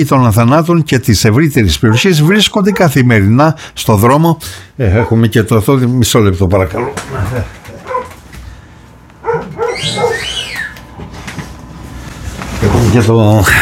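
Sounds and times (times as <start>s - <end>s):
speech: 0.0s - 7.6s, 12.9s - 13.6s
Rottweiler barking: 1.8s - 3.0s, 4.9s - 5.2s, 6.7s - 8.2s, 9.2s - 10.5s.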